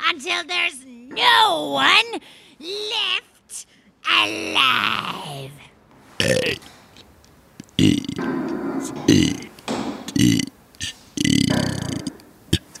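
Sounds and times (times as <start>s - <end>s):
speech: 0.1s - 5.6s
person belching the alphabet: 6.2s - 6.7s, 7.8s - 8.3s, 8.9s - 12.7s.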